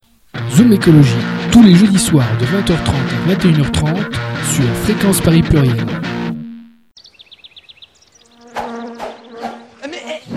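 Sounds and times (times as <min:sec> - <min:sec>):
speech: 0:00.6 - 0:06.0
quick chirping calls: 0:07.0 - 0:10.1
bee buzzing: 0:07.0 - 0:10.3.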